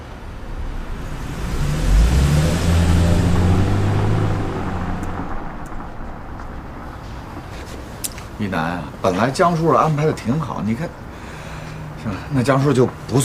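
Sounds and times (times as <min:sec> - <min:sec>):
car engine starting: 0:00.0 - 0:09.0
speech: 0:08.4 - 0:11.1, 0:12.0 - 0:13.2.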